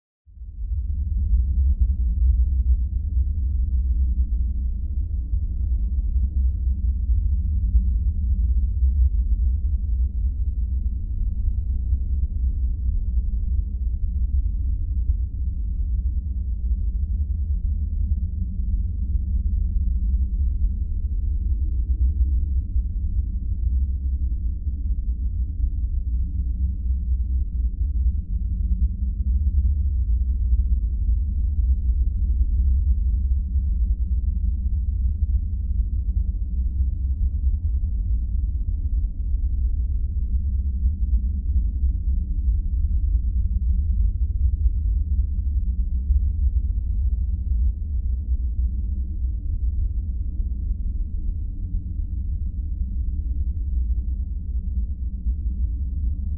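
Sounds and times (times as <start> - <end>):
ambient rumble: 0.3 - 56.3.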